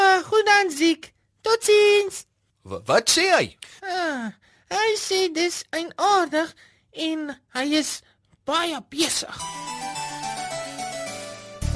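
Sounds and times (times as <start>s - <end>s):
speech: 0.7s - 9.9s
mobile phone ringtone melody signalling an incoming call: 9.4s - 11.5s.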